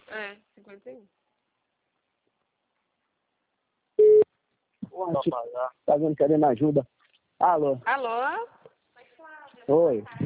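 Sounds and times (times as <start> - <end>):
speech: 0.2 - 1.2, 5.0 - 8.6, 9.7 - 10.2
telephone ringback tone beep: 4.0 - 4.2.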